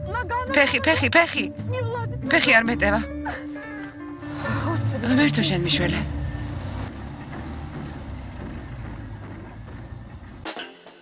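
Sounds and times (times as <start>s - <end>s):
speech: 0.4s - 3.4s, 5.0s - 6.2s
Czech Kaipan roadster sports car engine running: 4.2s - 10.5s.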